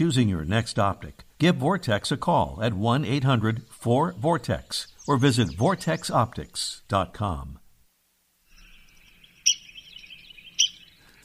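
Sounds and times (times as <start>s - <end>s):
speech: 0.0s - 7.6s
faint background hiss: 0.0s - 11.2s
Red-cockaded Woodpecker giving sharp high squeaky call notes: 8.6s - 11.2s.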